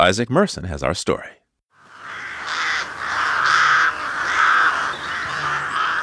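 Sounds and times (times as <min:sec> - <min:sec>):
speech: 0:00.0 - 0:01.4
several crows cawing: 0:01.8 - 0:06.0.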